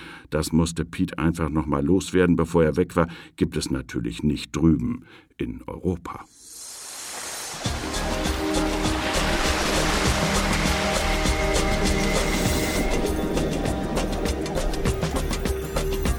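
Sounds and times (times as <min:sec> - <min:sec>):
speech: 0:00.3 - 0:06.4
clear water lapping beneath a long wooden pier: 0:06.9 - 0:16.0
faint sustained humming tones: 0:07.6 - 0:15.3.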